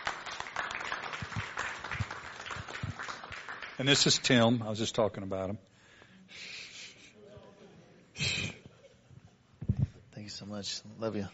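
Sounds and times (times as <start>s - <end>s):
crowd applauding: 0.0s - 4.4s
speech: 3.8s - 5.7s, 10.5s - 11.3s.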